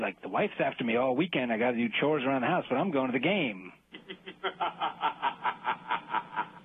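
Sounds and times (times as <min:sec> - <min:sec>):
speech: 0:00.0 - 0:06.1
laugh sound effect with snickering bursts: 0:03.9 - 0:06.6.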